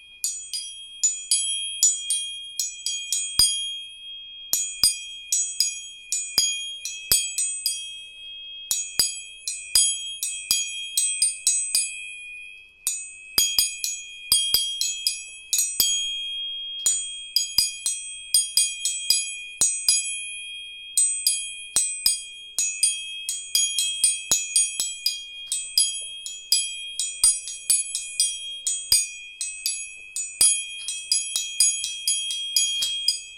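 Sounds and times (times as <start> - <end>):
tuning fork ringing: 0.0 - 33.3
sharp metallic taps: 30.4 - 33.3.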